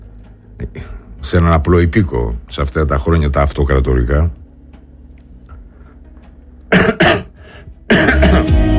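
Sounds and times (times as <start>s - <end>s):
speech: 0.6s - 4.4s
person with a cold coughing: 6.7s - 8.6s
person with a cold roughly clearing throat: 6.7s - 8.6s.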